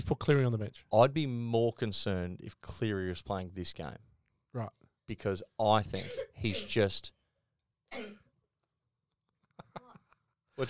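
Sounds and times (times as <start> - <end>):
speech: 0.1 - 7.2, 7.9 - 8.2
person coughing: 5.9 - 6.8, 7.9 - 8.3.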